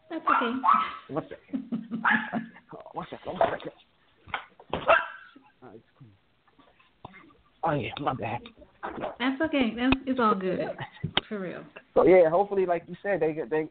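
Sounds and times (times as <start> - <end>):
dog barking: 0.2 - 1.2, 2.0 - 2.5, 4.8 - 5.4
speech: 0.2 - 3.9, 7.6 - 13.6.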